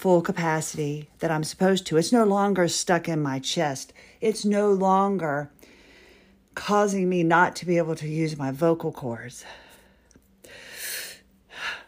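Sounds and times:
speech: 0.0 - 5.6, 6.6 - 9.6
deep breath drawn in and released: 5.6 - 6.4, 9.4 - 11.8.

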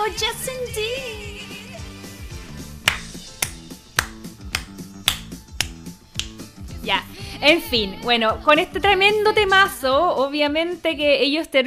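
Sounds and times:
speech: 0.1 - 1.1, 6.9 - 11.6
song with bouncy bass line: 2.2 - 10.1
crisp loud finger snaps on a steady beat: 2.8 - 6.5.

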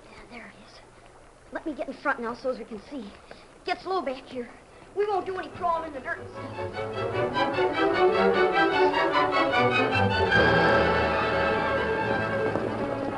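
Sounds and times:
murky background: 1.5 - 13.1
speech: 1.6 - 11.2
hoofbeats of horses trotting to a halt outside a cave: 11.0 - 13.1.

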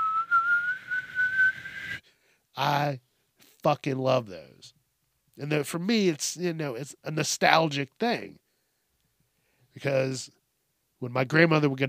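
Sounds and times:
whistling tea kettle: 0.0 - 2.0
speech: 2.6 - 4.8, 5.4 - 8.4, 9.8 - 10.4, 11.0 - 11.8.

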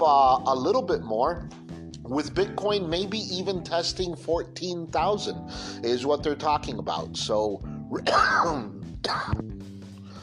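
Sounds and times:
speech: 0.0 - 9.5
person coughing harshly with throaty clearing: 8.1 - 9.4.

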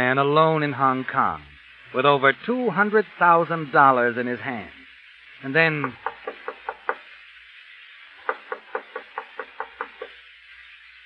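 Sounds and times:
speech: 0.0 - 4.8, 5.4 - 6.1
knocking on a door: 5.8 - 7.0, 8.2 - 10.2.

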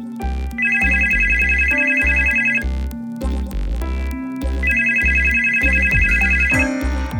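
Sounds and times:
low rhythmic musical background: 0.0 - 7.1
telephone ringing in electronic bursts: 0.6 - 2.6, 4.6 - 6.7.

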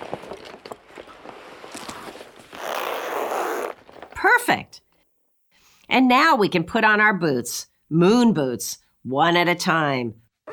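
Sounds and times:
fabric rustling: 0.0 - 4.2
zipper being zipped up on a suit: 1.4 - 4.2
speech: 6.0 - 10.2.

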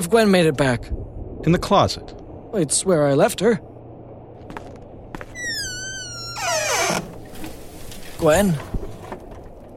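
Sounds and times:
speech: 0.0 - 3.7, 8.2 - 8.7
door being closed with a high-pitched creak: 5.4 - 7.3.

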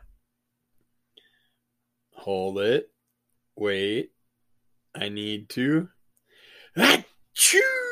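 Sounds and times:
speech: 2.2 - 2.9, 3.6 - 4.2, 5.0 - 6.0, 6.8 - 7.8
person acting out a big exaggerated sneeze: 6.8 - 7.8.

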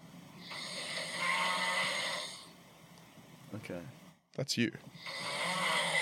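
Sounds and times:
man snoring loudly in his sleep: 0.4 - 2.6, 5.0 - 6.0
speech: 3.5 - 5.3.

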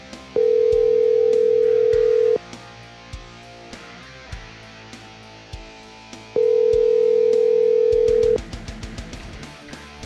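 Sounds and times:
phone call ringback tones: 0.4 - 2.4, 6.4 - 8.4
short beeps: 0.4 - 2.4, 6.4 - 8.4.

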